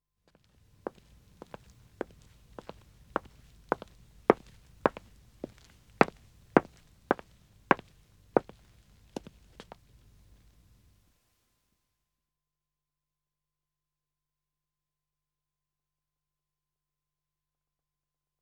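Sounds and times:
man's footsteps walking on dead wood: 0.3 - 10.7.

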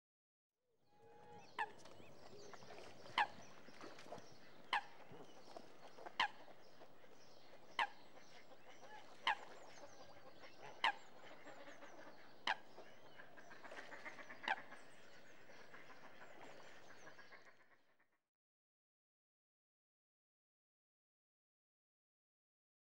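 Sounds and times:
geese: 1.0 - 18.1
coot: 1.2 - 6.5, 7.8 - 17.9.

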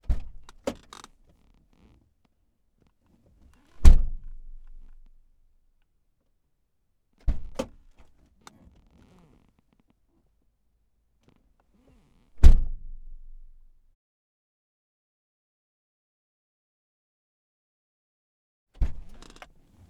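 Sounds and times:
1995 Ford Probe doors from the interior: 0.1 - 1.8, 7.3 - 9.5, 18.8 - 19.8.

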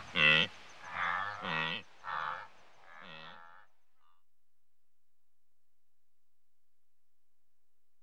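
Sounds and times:
wildebeest making short nasal grunts: 0.1 - 3.6.

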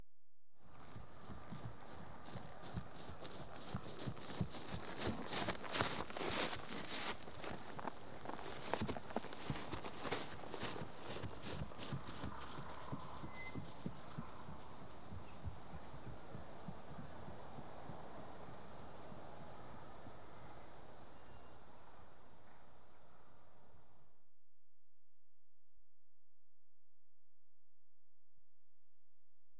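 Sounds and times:
horse trotting through grass: 0.6 - 21.4.

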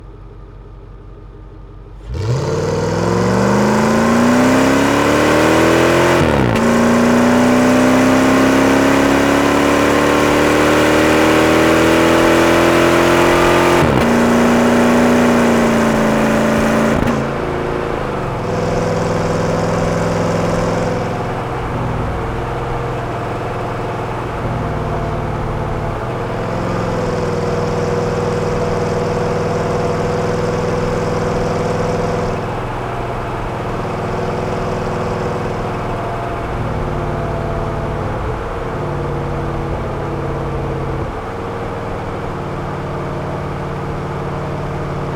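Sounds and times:
Jeep Grand Cherokee WJ 4.7 V8 engine accelerating with Magnaflow exhaust: 1.8 - 45.1.

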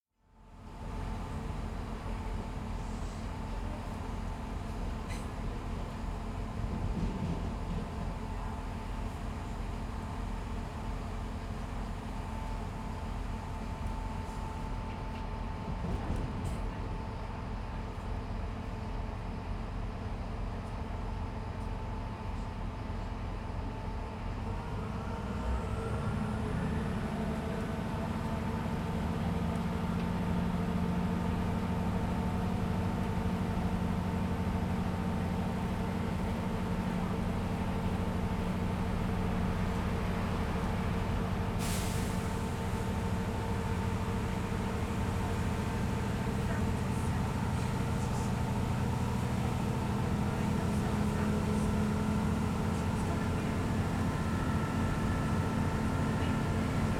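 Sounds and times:
train interior starting and stopping: 0.7 - 56.9.

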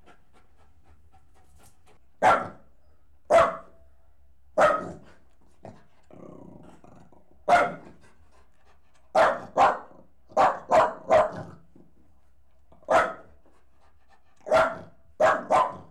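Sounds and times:
Jack Russell Terrier and Corgi cross dog barking: 2.2 - 2.7, 3.3 - 3.8, 4.6 - 5.0, 7.5 - 7.8, 9.2 - 11.5, 12.9 - 13.3, 14.5 - 15.9.

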